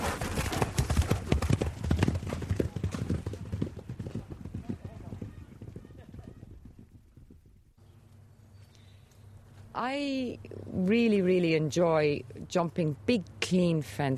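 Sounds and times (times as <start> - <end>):
restless horse hooves clip-clopping: 0.0 - 7.6
speech: 9.8 - 14.1.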